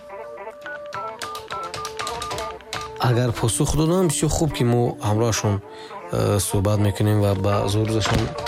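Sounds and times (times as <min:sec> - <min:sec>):
telephone keypad tones dialing a call: 0:00.1 - 0:03.0
speech: 0:03.0 - 0:08.4.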